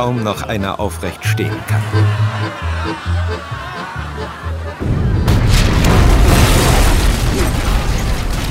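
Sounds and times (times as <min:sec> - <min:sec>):
speech: 0:00.0 - 0:05.0
rhythmic laughter: 0:01.1 - 0:04.9
gunpowder magazine explosion: 0:04.8 - 0:08.4.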